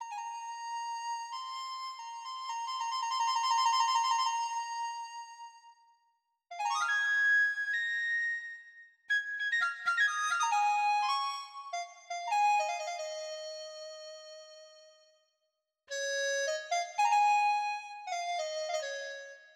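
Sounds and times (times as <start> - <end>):
dizi flute: 0.0 - 5.8, 6.5 - 14.7, 16.0 - 19.4.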